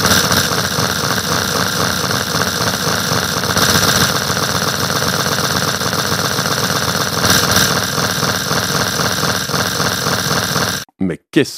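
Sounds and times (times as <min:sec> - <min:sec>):
old tractor engine running: 0:00.0 - 0:10.8
speech: 0:11.1 - 0:11.5.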